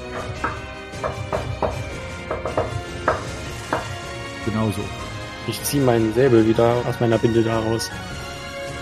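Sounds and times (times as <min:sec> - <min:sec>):
soft uneven hammering: 0:00.0 - 0:04.0
speech: 0:04.6 - 0:08.1.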